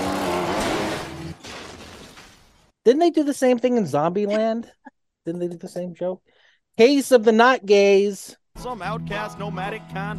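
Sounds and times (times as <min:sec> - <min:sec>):
motorcycle engine roaring and revving: 0:00.0 - 0:01.4
speech: 0:02.9 - 0:10.1.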